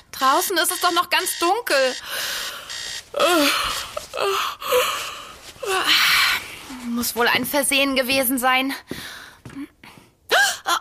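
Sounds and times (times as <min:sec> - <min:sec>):
speech: 0:00.2 - 0:02.4, 0:03.1 - 0:06.2, 0:06.9 - 0:09.0
alarm clock bell ringing loudly: 0:00.5 - 0:03.0
person groaning and sighing sleepily: 0:03.2 - 0:05.0.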